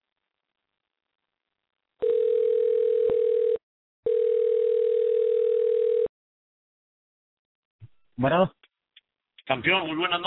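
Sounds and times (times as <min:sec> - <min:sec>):
telephone dial tone while a call is being placed: 0:02.0 - 0:06.1
speech: 0:08.2 - 0:08.6, 0:09.5 - 0:10.2.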